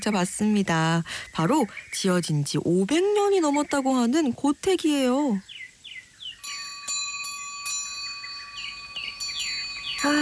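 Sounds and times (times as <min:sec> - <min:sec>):
speech: 0:00.0 - 0:05.5, 0:10.0 - 0:10.2
birds chirping: 0:00.0 - 0:10.2
metal wind chime ringing in the wind at tile roof eaves of an old house: 0:06.4 - 0:10.2.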